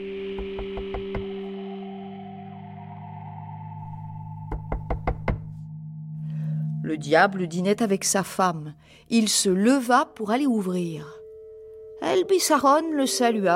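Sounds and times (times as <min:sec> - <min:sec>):
low sustained eerie drone with a slight echo: 0:00.0 - 0:13.5
sharp knocks on a door: 0:04.5 - 0:05.4
speech: 0:06.9 - 0:11.2, 0:12.1 - 0:13.5.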